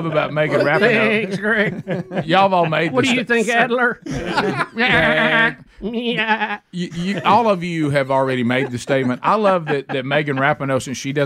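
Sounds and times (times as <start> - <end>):
laughter: 0.0 - 11.0
speech: 0.0 - 11.2
goat bleating: 6.1 - 6.7.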